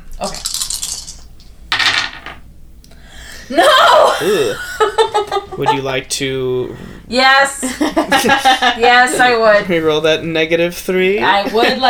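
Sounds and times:
speech: 0.2 - 0.4, 3.5 - 11.8
dice rolling on a hard tabletop in a tabletop roleplaying game: 0.8 - 2.5
laughter: 3.5 - 6.1, 7.6 - 9.6, 11.2 - 11.8.

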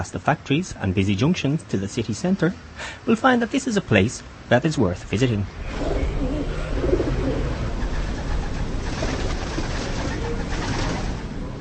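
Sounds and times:
speech: 0.0 - 6.2
outdoor noise: 0.0 - 11.5
pigeons cooing on Gothic cathedral buttresses: 5.6 - 11.3.

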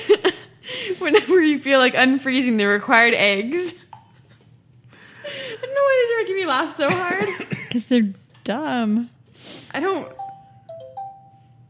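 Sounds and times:
speech: 1.0 - 3.8, 5.3 - 10.2
mobile phone ringtone: 10.1 - 11.6.

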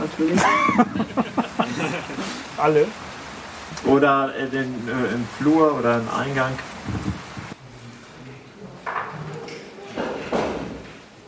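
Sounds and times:
faint voices murmuring: 0.0 - 10.0
laughter: 0.2 - 2.5
speech: 0.2 - 3.2, 3.8 - 7.2
chairs being carried in and set down indoors: 0.6 - 1.2, 6.8 - 7.6, 8.9 - 11.0.

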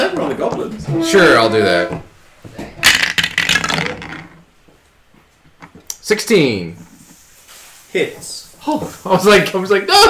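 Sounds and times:
speech: 0.4 - 2.6, 6.1 - 6.9, 7.9 - 10.0
dice thrown onto a table during a tabletop role-playing game: 2.8 - 4.4.

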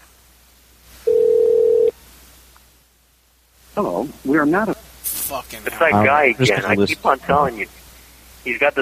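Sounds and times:
steady electronic telephone ringback tone on an outgoing call: 1.1 - 1.9
speech: 3.8 - 7.8, 8.4 - 8.8.

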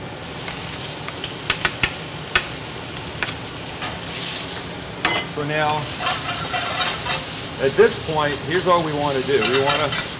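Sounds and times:
beef sizzling in hot smoking oil for a beef and snow peas stir-fry: 0.0 - 10.1
speech: 5.4 - 6.2, 7.6 - 10.1.

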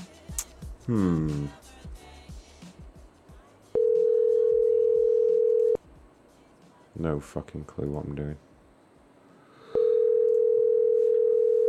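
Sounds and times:
speech: 0.9 - 1.6, 7.0 - 8.5
telephone ringing tone: 3.8 - 5.8, 9.7 - 11.6.

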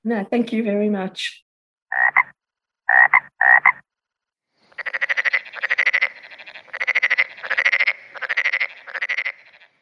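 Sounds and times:
speech: 0.0 - 2.3
frogs croaking in rattling pulsed bursts: 1.9 - 3.9, 4.6 - 9.8.

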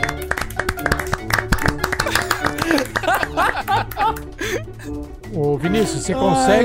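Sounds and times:
hands clapping: 0.0 - 4.4
people chuckling and snickering: 1.8 - 5.0
speech: 4.8 - 6.6.

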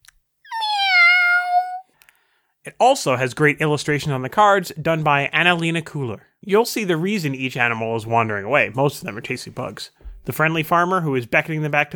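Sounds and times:
child imitating a cat's meow: 0.5 - 1.9
speech: 2.6 - 11.9.

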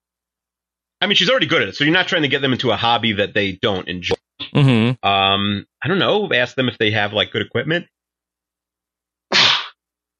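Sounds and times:
speech: 1.0 - 7.9
person sneezing: 4.4 - 5.0, 9.3 - 9.8.

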